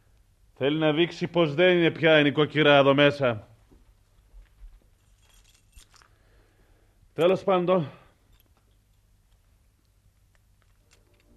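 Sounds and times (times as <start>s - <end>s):
low hum: 0.0s - 11.3s
speech: 0.6s - 3.5s, 7.2s - 8.0s
small bunch of keys thrown down jangling: 5.0s - 6.2s, 10.6s - 11.3s.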